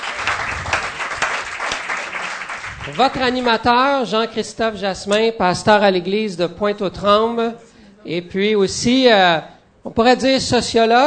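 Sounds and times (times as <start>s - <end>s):
audience applause for a guest being thanked at an evening event: 0.0s - 3.6s
speech: 2.9s - 11.0s.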